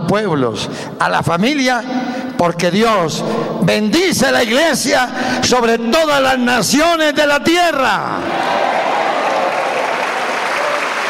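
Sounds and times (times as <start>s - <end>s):
speech: 0.1s - 8.6s
audience applauding: 8.3s - 11.0s.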